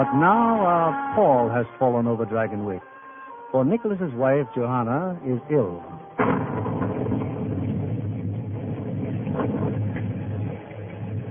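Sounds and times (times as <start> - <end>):
speech: 0.0 - 2.9, 3.5 - 6.1
rolling thunder in the Catskill mountains: 6.2 - 11.2.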